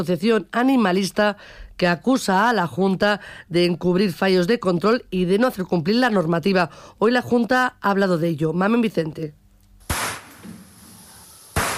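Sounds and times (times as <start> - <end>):
speech: 0.0 - 9.4
gunshots at a slaughterhouse in Segovia where fawns were shot: 9.9 - 10.4, 11.5 - 11.7.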